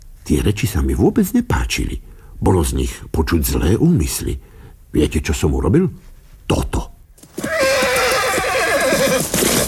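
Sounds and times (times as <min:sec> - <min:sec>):
speech: 0:00.3 - 0:06.8
horse hooves clattering: 0:07.2 - 0:09.6
horse neighing as it rears: 0:07.3 - 0:09.6.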